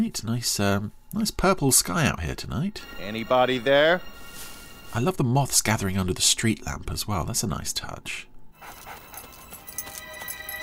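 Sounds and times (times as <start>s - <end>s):
speech: 0.0s - 4.3s, 4.9s - 8.3s
steady low hum: 0.0s - 10.6s
dog panting: 8.6s - 10.6s.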